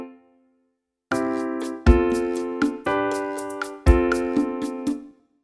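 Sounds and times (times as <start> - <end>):
montuno chords: 1.1 - 5.1.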